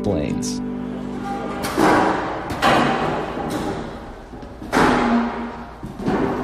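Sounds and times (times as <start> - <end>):
speech: 0.0 - 0.8
steady hum: 0.6 - 6.4
metal folding chairs clattering as they are set up: 0.9 - 6.4.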